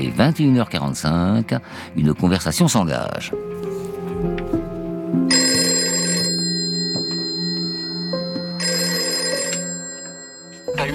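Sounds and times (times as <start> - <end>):
speech: 0.0 - 4.5
telephone ringing: 5.3 - 10.9.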